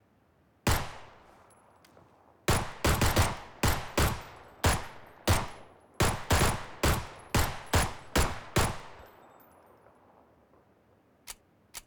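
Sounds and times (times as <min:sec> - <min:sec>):
P18c pistol single shot: 0:00.7 - 0:01.3, 0:02.5 - 0:09.0.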